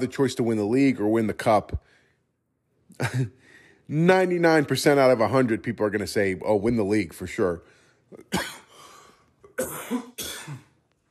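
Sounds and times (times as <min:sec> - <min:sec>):
speech: 0:00.0 - 0:02.0, 0:03.0 - 0:08.6
throat clearing: 0:08.2 - 0:08.7, 0:09.5 - 0:10.8
person coughing: 0:08.2 - 0:10.8.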